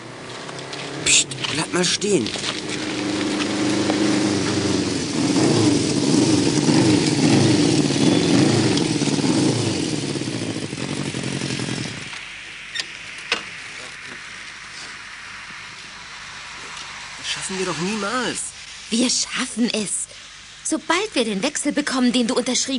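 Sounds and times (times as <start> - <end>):
motorcycle engine rattling and throbbing: 0.0 - 12.2
speech: 1.1 - 2.6, 18.3 - 20.0, 20.7 - 22.7.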